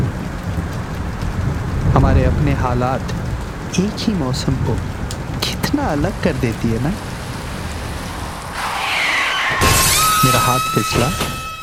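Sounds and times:
deep low rolling thunder: 0.0s - 11.6s
steady dense rain: 0.0s - 11.6s
speech: 2.2s - 7.1s, 10.2s - 11.4s.

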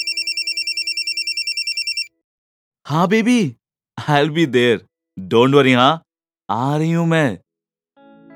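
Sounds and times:
telephone ringing with an electronic bell: 0.0s - 2.1s
speech: 2.9s - 7.4s.

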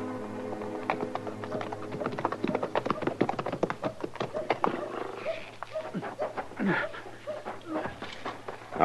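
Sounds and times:
horse hooves clip-clopping: 0.2s - 8.8s
horse snorting: 3.8s - 8.8s.

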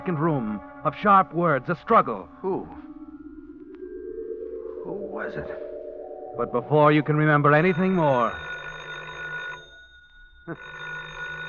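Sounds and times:
speech: 0.0s - 2.9s, 4.8s - 5.7s, 6.4s - 8.5s, 10.4s - 10.8s
telephone bell ringing: 7.0s - 11.4s.

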